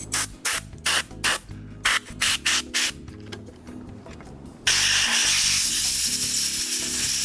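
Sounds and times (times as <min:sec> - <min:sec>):
aerosol can spraying onto electric motor brushes and commutator: 0:00.1 - 0:03.0, 0:04.7 - 0:07.2.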